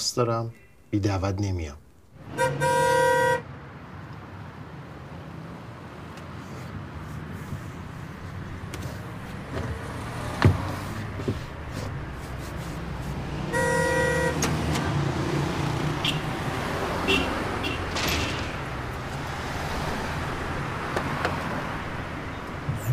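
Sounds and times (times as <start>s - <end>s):
steady low outdoor noise: 0.0s - 22.9s
speech: 0.1s - 2.8s
loud sustained car horn blast: 2.3s - 3.5s, 13.5s - 14.5s, 16.0s - 16.3s, 17.0s - 17.9s.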